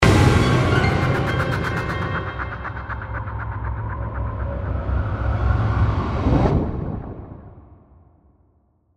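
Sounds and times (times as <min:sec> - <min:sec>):
horror music stab: 0:00.0 - 0:06.3
piano: 0:00.0 - 0:07.7
whoosh: 0:00.0 - 0:07.9
eerie scary soundscape: 0:00.0 - 0:08.3.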